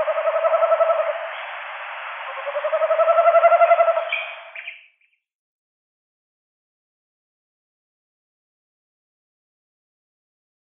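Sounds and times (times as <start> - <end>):
Tawny owl delivering a wavering bubbling hoot in pair display: 0.0 - 1.4, 2.3 - 4.6.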